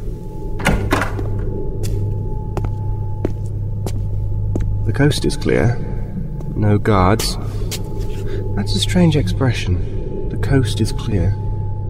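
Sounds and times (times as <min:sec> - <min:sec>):
steady low mechanical hum: 0:00.0 - 0:11.8
locked door opening with a heavy thunk and scraping rush: 0:00.6 - 0:01.5
speech: 0:05.0 - 0:05.9, 0:06.6 - 0:07.8, 0:08.6 - 0:11.4.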